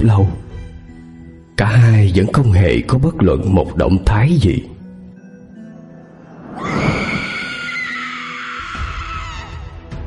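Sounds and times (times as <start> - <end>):
speech: 0.0 - 0.5, 1.6 - 4.8
eerie drawn-out scream: 6.4 - 9.8.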